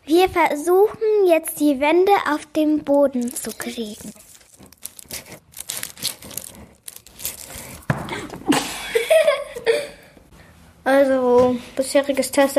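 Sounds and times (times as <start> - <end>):
speech: 0.1 - 4.3, 10.9 - 12.5
crinkly plastic packaging being unwrapped: 3.2 - 7.9
person chuckling: 8.0 - 10.2.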